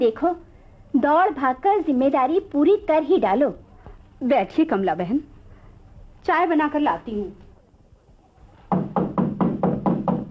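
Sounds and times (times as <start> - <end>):
speech: 0.0 - 3.6, 4.2 - 5.3, 6.2 - 7.4
heavy loud knocking on a door: 8.7 - 10.2.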